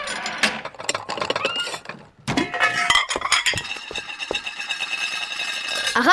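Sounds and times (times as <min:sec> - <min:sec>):
frying pan scraping while sliding fried eggs onto a plate: 0:00.0 - 0:06.1
frying pan clinking and clattering against crockery: 0:02.3 - 0:06.1.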